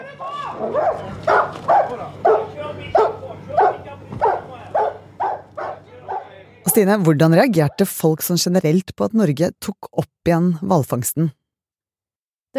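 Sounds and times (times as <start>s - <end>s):
speech: 0.4s - 3.0s, 6.8s - 11.4s
police dogs barking: 0.4s - 7.9s.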